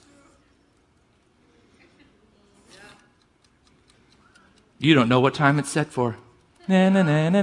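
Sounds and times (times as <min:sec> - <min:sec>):
clock timer being twisted with a scraping burst: 0:03.0 - 0:04.9
speech: 0:04.8 - 0:07.4.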